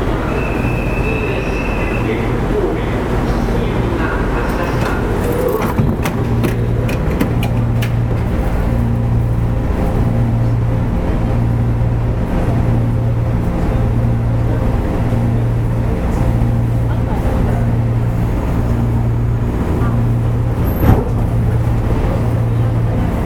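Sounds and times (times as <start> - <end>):
steady low rumble inside an electric local train: 0.0 - 23.2
low hum pulsing at a regular beat: 2.4 - 23.2.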